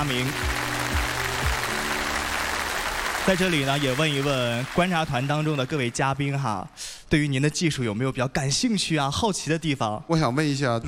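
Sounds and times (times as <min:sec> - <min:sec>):
speech: 0:00.0 - 0:00.6, 0:03.2 - 0:10.8
audience applause at a stage event honoring a new cancer-treatment technology: 0:00.0 - 0:06.4.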